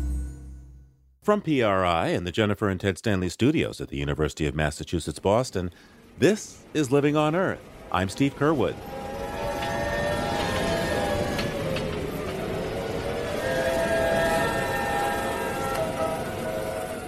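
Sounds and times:
speech: 1.3s - 9.0s
hurricane winds howling: 6.0s - 17.0s.

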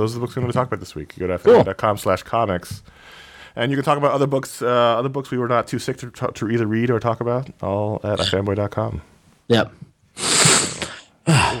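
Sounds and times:
speech: 0.0s - 10.3s
sneeze-like sniffle through the nose: 10.2s - 11.5s.

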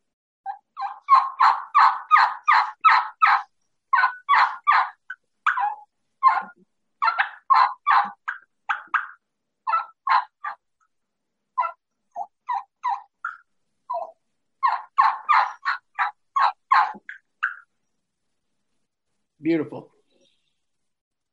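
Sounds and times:
plain turkey hen yelps from a game call: 0.5s - 10.6s, 11.6s - 17.7s
speech: 19.4s - 19.9s.

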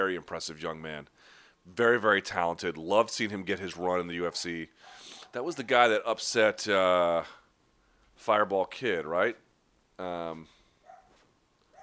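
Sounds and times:
speech: 0.0s - 7.4s, 8.2s - 9.4s, 10.0s - 10.6s
dog barking at home: 4.3s - 5.9s, 10.8s - 11.8s.

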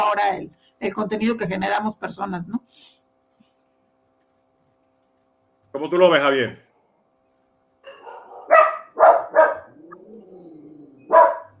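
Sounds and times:
speech: 0.0s - 3.0s, 5.8s - 6.6s
dogs barking: 7.8s - 10.1s, 11.0s - 11.5s.

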